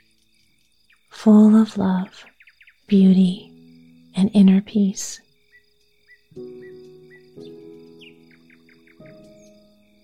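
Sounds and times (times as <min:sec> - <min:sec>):
nightingale singing: 0:00.0 - 0:10.0
speech: 0:01.2 - 0:02.3, 0:02.9 - 0:03.5, 0:04.2 - 0:05.2.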